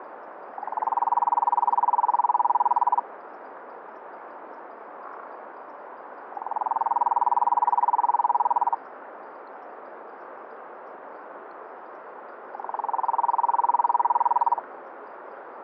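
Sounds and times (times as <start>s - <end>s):
Rhinella crucifer advertisement call: 0.6s - 3.0s, 6.4s - 8.8s, 12.6s - 14.6s.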